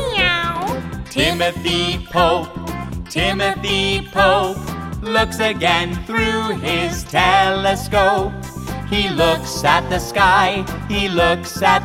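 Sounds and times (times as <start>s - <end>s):
cat meowing and yowling: 0.0s - 0.7s
speech: 1.2s - 11.8s.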